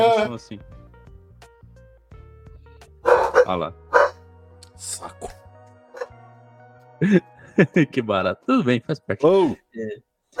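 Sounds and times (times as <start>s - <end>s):
speech: 0.0s - 0.8s, 3.5s - 3.8s, 4.8s - 5.4s, 7.0s - 10.1s
small Pomeranian dog barking in high-pitched yaps: 3.0s - 4.2s
laughter: 7.0s - 8.0s.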